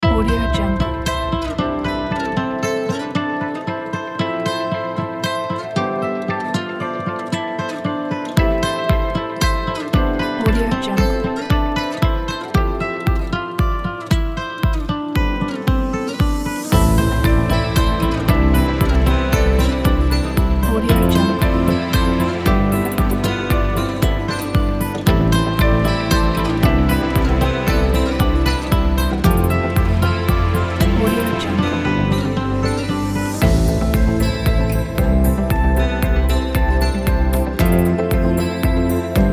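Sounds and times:
ambient guitar: 0.0 - 39.3.

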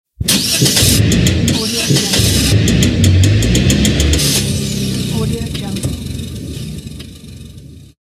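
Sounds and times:
broken car engine starting: 0.2 - 8.0.

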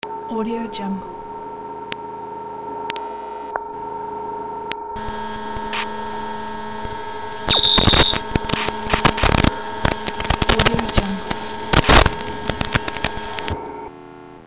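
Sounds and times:
radio static: 5.0 - 13.6.

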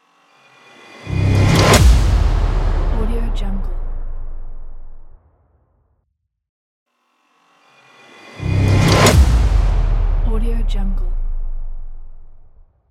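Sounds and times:
crash explosion: 1.0 - 5.4, 8.4 - 12.6.

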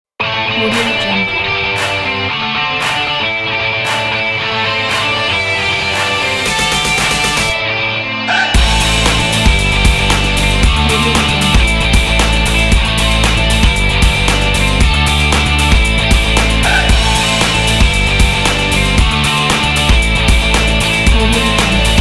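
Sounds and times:
breakbeat indie rock music: 0.2 - 21.9.

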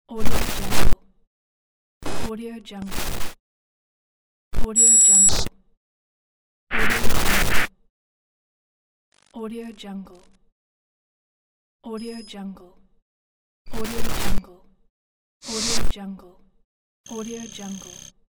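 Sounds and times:
radio static glitches: 0.2 - 1.0, 2.0 - 2.3, 2.9 - 3.4, 4.6 - 5.5, 6.7 - 7.7, 9.1 - 9.4, 13.7 - 14.4, 15.4 - 15.9, 17.1 - 18.1.

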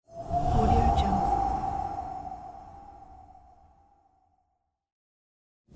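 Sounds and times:
frost wind swoosh: 0.1 - 4.2.

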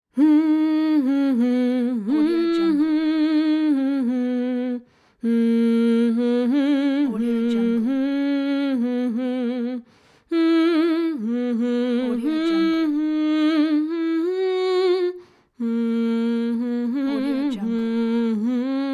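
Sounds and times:
woman humming: 0.2 - 18.9.

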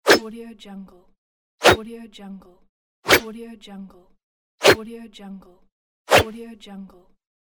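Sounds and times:
dagger attack: 0.0 - 0.2, 3.1 - 3.3.

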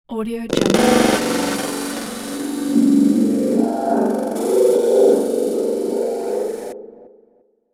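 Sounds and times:
sound distortion: 0.5 - 7.0.

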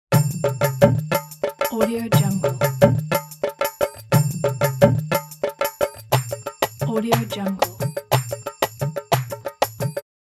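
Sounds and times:
Indian percussion: 0.1 - 10.1.

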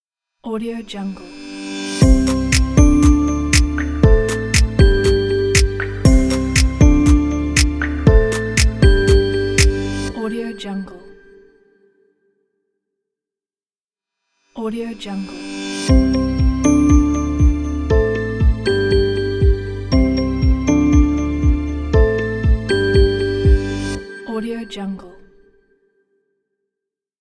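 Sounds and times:
positive modern logo jingle: 2.0 - 10.6, 15.9 - 24.7.

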